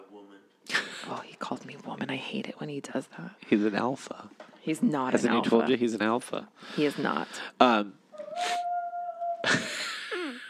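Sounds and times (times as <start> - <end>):
speech: 1.1 - 8.6
pet animal howling: 8.1 - 9.7.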